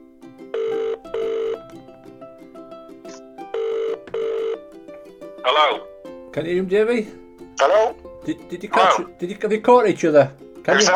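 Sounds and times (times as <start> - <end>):
telephone call ringing out with double-burst ring tones: 0.6 - 1.7, 3.6 - 4.6
speech: 5.5 - 10.9.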